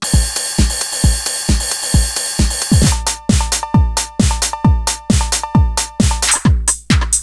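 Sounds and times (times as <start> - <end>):
sequencer pattern: 0.1 - 7.0.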